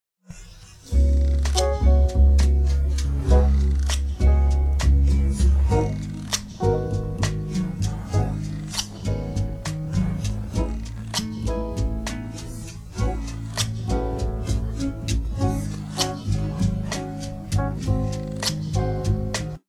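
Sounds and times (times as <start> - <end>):
instrumental music: 0.9 - 19.6.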